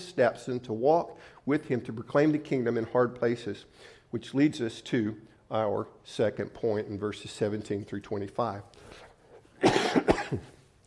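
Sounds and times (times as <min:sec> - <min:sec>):
speech: 0:00.2 - 0:09.0, 0:09.6 - 0:10.6
man coughing during a sermon: 0:09.6 - 0:10.6.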